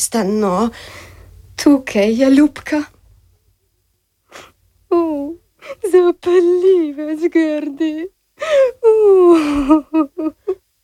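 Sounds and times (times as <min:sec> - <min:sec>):
speech: 0:00.0 - 0:03.0, 0:04.3 - 0:10.8
woman crying: 0:04.9 - 0:10.8.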